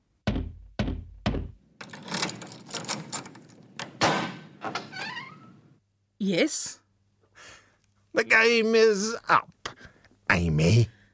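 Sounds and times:
heavy knocks on a door: 0:00.3 - 0:01.6
brief high creak: 0:04.8 - 0:05.6
speech: 0:06.2 - 0:06.8, 0:08.2 - 0:09.6, 0:10.3 - 0:11.0.

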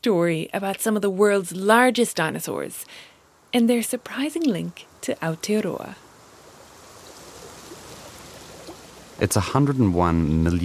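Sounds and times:
speech: 0:00.0 - 0:06.0, 0:09.2 - 0:10.6
flowing river water rushing: 0:06.4 - 0:09.2.

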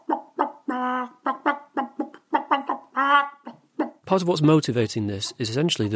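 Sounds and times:
person doing a bird impression into a phone: 0:00.0 - 0:04.1
speech: 0:04.1 - 0:05.9.

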